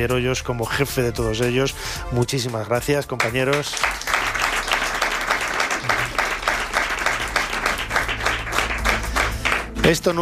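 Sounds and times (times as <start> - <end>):
speech: 0.0 - 4.0, 9.9 - 10.2
crowd applauding: 3.2 - 10.2.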